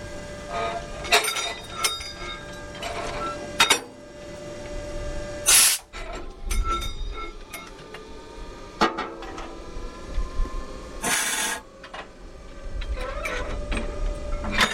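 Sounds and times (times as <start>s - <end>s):
steady locomotive hum: 0.0s - 14.7s
metallic clanks of locomotive uncoupling from freight wagons: 1.1s - 4.2s
compressed air hissing from separated brake lines: 5.5s - 5.9s, 11.0s - 11.6s.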